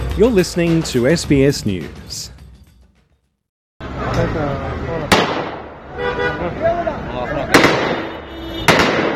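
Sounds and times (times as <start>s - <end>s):
speech: 0.2s - 2.3s
noisy crowd of desperate people outside banks in Afghanistan: 3.8s - 8.8s
rifle shots outside banks in Afghanistan: 5.1s - 5.7s, 7.5s - 8.1s, 8.7s - 9.1s.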